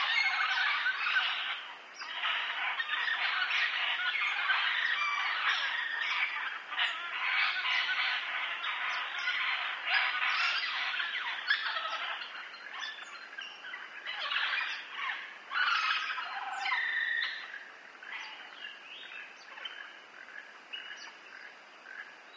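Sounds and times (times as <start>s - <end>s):
parrot squawking: 0.0s - 13.0s, 13.6s - 18.5s.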